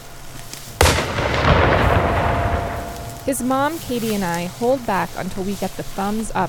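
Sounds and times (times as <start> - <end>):
rifle shot fired during a hunt: 0.8 - 4.2
speech: 3.3 - 6.4.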